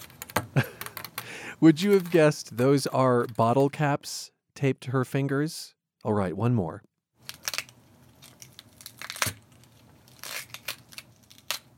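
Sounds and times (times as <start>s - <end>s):
speech: 1.6s - 6.9s
broccoli torn apart by hand as a foley sound effect: 7.2s - 11.7s.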